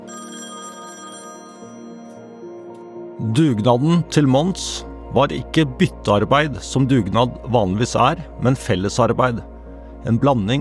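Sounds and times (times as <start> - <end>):
old telephone bell ringing: 0.0 - 3.2
speech: 3.2 - 10.5.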